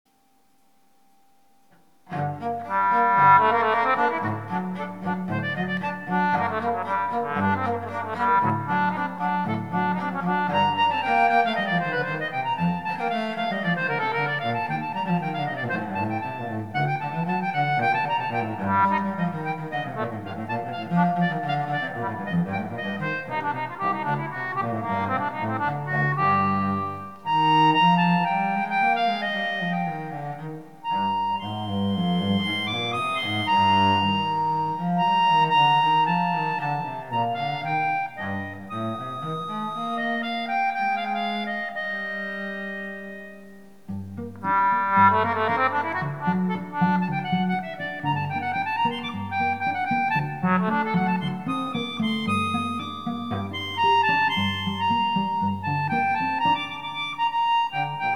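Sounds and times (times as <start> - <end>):
dodgy cello playing in a duet in G minor: 1.7 - 58.1.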